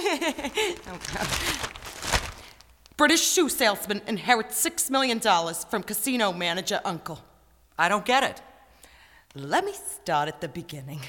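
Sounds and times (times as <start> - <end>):
speech: 0.1 - 2.2, 3.0 - 8.5, 9.3 - 11.0
newspaper pages rustling and crinkling: 0.3 - 2.9.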